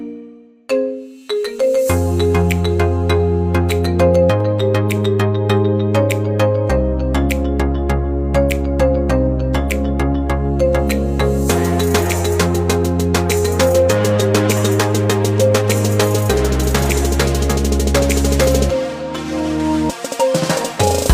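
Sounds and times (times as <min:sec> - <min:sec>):
song remix: 0:00.8 - 0:21.1.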